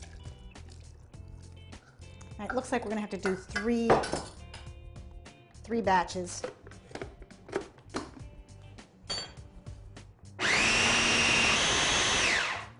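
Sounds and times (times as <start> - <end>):
speech: 2.4 - 4.4, 5.7 - 6.6
food processor pureeing food: 10.4 - 12.7.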